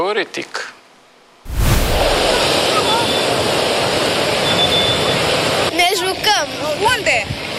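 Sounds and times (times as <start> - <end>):
speech: 0.1 - 0.7, 6.4 - 7.4
strong sea waves driven by strong wind crashing on a beach: 1.5 - 5.8.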